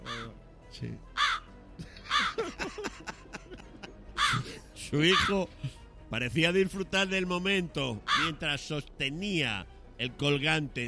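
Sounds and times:
crow cawing: 0:00.0 - 0:00.4, 0:01.1 - 0:02.5, 0:04.1 - 0:05.5, 0:08.0 - 0:08.4
speech: 0:00.7 - 0:01.1, 0:01.8 - 0:03.7, 0:04.3 - 0:10.8
laughter: 0:01.8 - 0:04.6.

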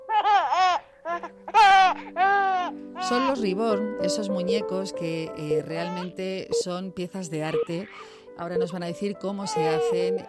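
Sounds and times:
baby crying: 0:00.0 - 0:03.5, 0:05.6 - 0:06.3, 0:07.5 - 0:08.2, 0:09.4 - 0:10.2
speech: 0:03.0 - 0:10.2.

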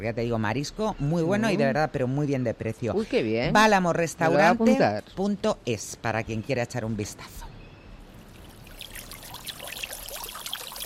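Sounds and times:
speech: 0:00.0 - 0:07.5
fountain water trickling and splashing: 0:08.0 - 0:10.8.

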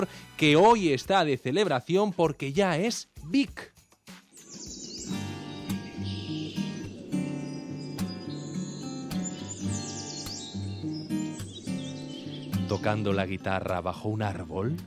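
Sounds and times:
speech: 0:00.0 - 0:03.7, 0:12.7 - 0:14.8
swallows chirping and twittering in flight: 0:04.3 - 0:13.6.

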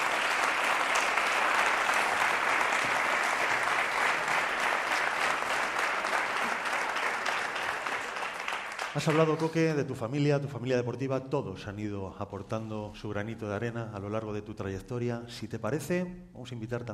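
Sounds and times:
loud sustained applause from a large audience: 0:00.0 - 0:09.8
speech: 0:09.0 - 0:16.9.

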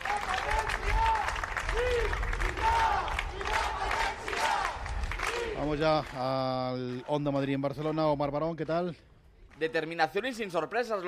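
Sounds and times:
large crowd applauding at a ceremony: 0:00.0 - 0:08.0
raised voices calling and cheering: 0:00.0 - 0:08.3
speech: 0:05.6 - 0:11.0.

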